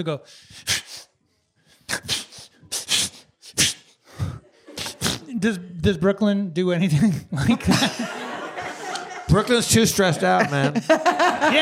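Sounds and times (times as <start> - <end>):
speech: 0.0 - 0.8, 5.3 - 8.3, 9.3 - 11.5
person imitating a dog's attention-seeking sneeze: 0.6 - 1.1, 1.9 - 5.3
laughter: 4.2 - 5.7, 7.4 - 11.5.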